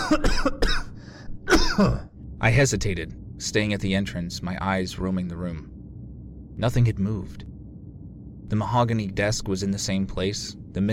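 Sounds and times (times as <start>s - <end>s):
person coughing: 0.0s - 2.1s
speech: 0.1s - 0.8s, 1.8s - 5.7s, 6.6s - 7.5s, 8.5s - 10.9s.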